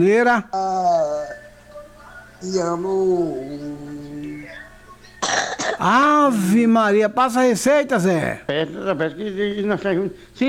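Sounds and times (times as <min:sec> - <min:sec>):
speech: 0:00.0 - 0:01.4, 0:02.4 - 0:04.6, 0:05.8 - 0:10.4
drawn-out tonal wavering vocal sound: 0:00.5 - 0:05.6
short harsh cough: 0:05.2 - 0:06.0.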